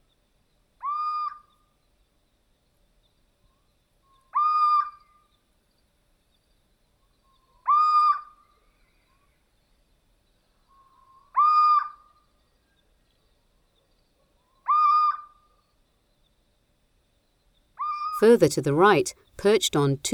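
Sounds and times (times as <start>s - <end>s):
little owl plaintive mewing call: 0.8s - 1.5s, 4.3s - 5.0s, 7.6s - 8.3s, 11.0s - 12.0s, 14.6s - 15.4s, 17.8s - 18.2s
speech: 18.2s - 20.1s.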